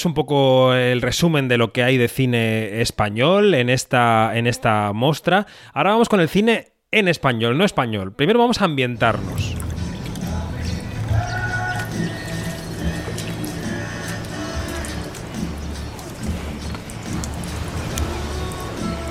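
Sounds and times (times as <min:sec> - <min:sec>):
speech: 0:00.0 - 0:09.7
soft music: 0:08.5 - 0:19.0
pouring and bottle sounds: 0:09.0 - 0:18.6
continuous splashing pool water: 0:09.0 - 0:19.0.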